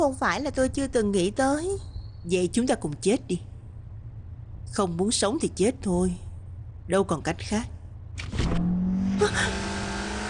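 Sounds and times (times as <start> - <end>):
speech: 0.0 - 3.5, 4.7 - 6.2, 6.9 - 8.4, 9.2 - 9.7
car engine drone heard while riding in the car: 7.9 - 10.2.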